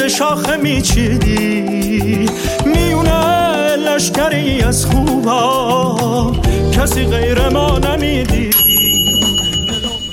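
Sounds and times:
speech: 0.1 - 3.2, 3.9 - 8.7
gas stove timer bell ringing in a kitchen: 8.5 - 10.1.

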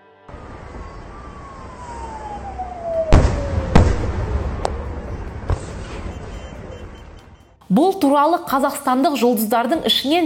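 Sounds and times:
steady rumble: 0.3 - 7.6
thin whistle-like tone sliding downward: 0.5 - 4.0, 4.7 - 7.6
fireworks bangs for a birthday celebration: 2.9 - 7.6
speech: 7.7 - 10.2.

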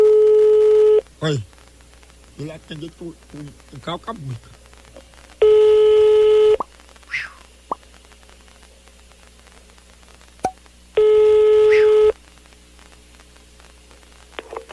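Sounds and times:
low static on telephone line: 0.0 - 14.7
speech: 1.2 - 1.6, 2.4 - 4.6
telephone line ringing tones: 5.4 - 6.6, 11.0 - 12.1.

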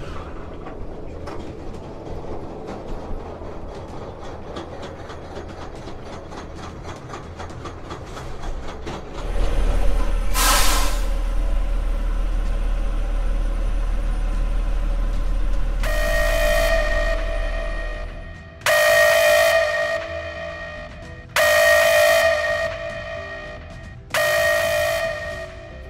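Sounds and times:
train rolling along the rails with a steady clickety-clack: 0.0 - 25.8.

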